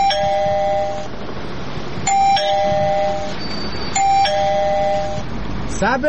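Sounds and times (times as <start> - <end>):
battery-powered doorbell ringing: 0.0 - 1.1, 2.1 - 5.3
bright electronic chime sequence of a doorbell: 0.0 - 1.1, 2.1 - 5.3
low steady rumble: 0.0 - 5.8.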